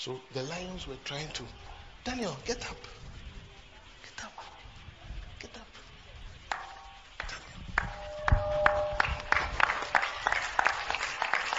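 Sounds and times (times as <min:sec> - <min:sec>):
speech: 0:00.0 - 0:03.0
hand clapping: 0:06.5 - 0:11.5
faint ringing tones: 0:07.8 - 0:10.7.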